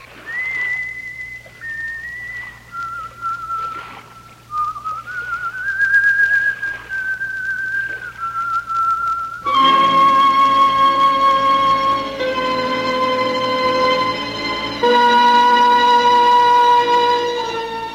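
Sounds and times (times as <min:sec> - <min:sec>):
faint low hum: 0:00.0 - 0:17.9
woman whistling a slow tune: 0:00.2 - 0:12.0.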